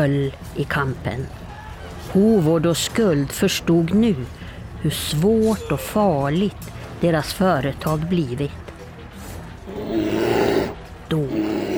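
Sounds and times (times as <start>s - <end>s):
speech: 0.0s - 1.4s, 2.1s - 8.6s
bear roaring: 9.6s - 11.7s.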